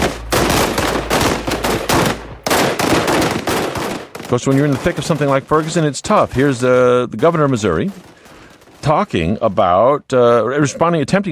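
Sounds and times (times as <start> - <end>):
M16 machine guns fired at targets by police SWAT team: 0.0 - 9.0
speech: 4.3 - 8.1, 8.8 - 11.3.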